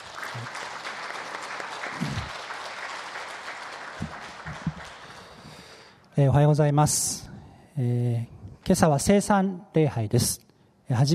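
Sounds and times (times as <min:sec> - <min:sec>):
congregation applauding in a reverberant room: 0:00.0 - 0:05.9
speech: 0:06.2 - 0:11.1.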